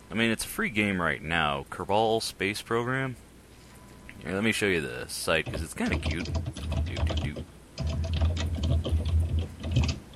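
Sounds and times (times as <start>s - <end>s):
speech: 0.1s - 3.2s, 4.2s - 7.5s
rapid typing on a computer keyboard: 5.4s - 10.1s.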